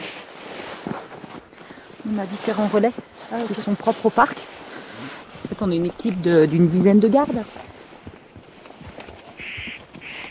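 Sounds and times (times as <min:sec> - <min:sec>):
speech: 0:02.1 - 0:04.5, 0:05.6 - 0:07.6
spotted nutcracker harsh rasping calls: 0:09.4 - 0:10.3.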